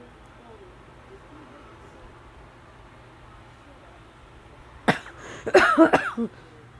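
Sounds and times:
person coughing: 4.9 - 6.3.

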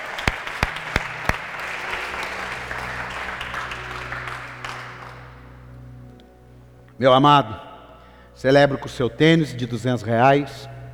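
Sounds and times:
crowd applauding: 0.0 - 5.9
speech: 7.0 - 7.6, 8.4 - 10.7.

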